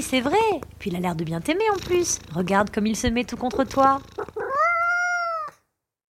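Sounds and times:
speech: 0:00.0 - 0:04.3
cat meowing: 0:04.2 - 0:05.6.

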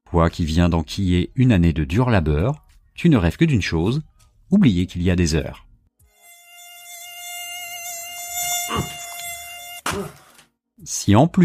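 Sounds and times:
speech: 0:00.1 - 0:05.6, 0:10.8 - 0:11.4
mosquito whine: 0:06.1 - 0:09.9.

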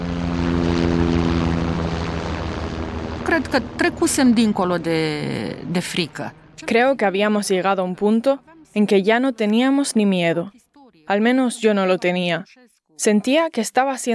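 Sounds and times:
helicopter rotor and engine drone: 0:00.0 - 0:07.4
speech: 0:03.3 - 0:14.1.

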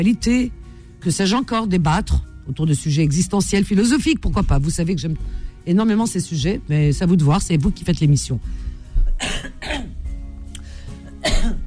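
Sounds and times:
speech: 0:00.0 - 0:09.6
person clearing throat: 0:09.1 - 0:10.0, 0:11.1 - 0:11.6.

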